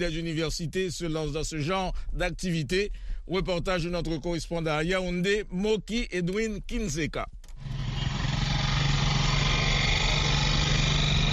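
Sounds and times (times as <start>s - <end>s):
speech: 0.0s - 7.4s
motorcycle taxi engine running steadily in Yaoundé: 7.6s - 11.3s.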